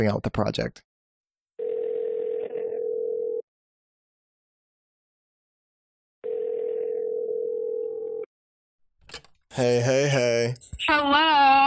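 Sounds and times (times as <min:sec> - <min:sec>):
speech: 0:00.0 - 0:00.9, 0:09.6 - 0:11.6
telephone ringback tone: 0:01.6 - 0:03.4, 0:06.2 - 0:08.3.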